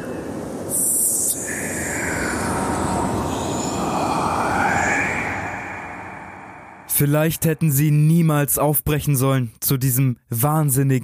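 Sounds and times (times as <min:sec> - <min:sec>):
dense roaring sandstorm wind: 0:00.0 - 0:07.5
speech: 0:07.0 - 0:11.0.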